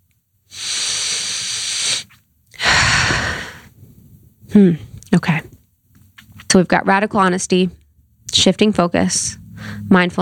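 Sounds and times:
deliberate deep breaths during a guided mindfulness pause: 0:00.5 - 0:03.9, 0:09.5 - 0:09.9
speech: 0:04.5 - 0:05.5, 0:06.6 - 0:07.8, 0:08.4 - 0:10.1.

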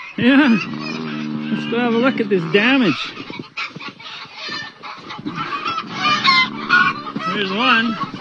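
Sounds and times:
agitated chickens clucking and squawking: 0:00.0 - 0:08.1
speech: 0:00.2 - 0:00.9, 0:01.5 - 0:03.5, 0:07.3 - 0:08.1.

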